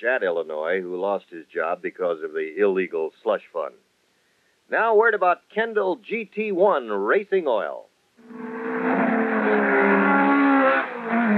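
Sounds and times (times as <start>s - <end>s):
speech: 0.0s - 3.9s, 4.7s - 9.0s
high-performance car engines revving, Mustang, Thunderbird, Camaro and Barracuda: 8.4s - 11.3s.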